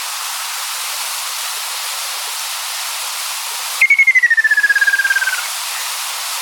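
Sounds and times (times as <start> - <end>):
faint background hiss: 0.0 - 6.4
ruddy kingfisher call: 3.8 - 5.5.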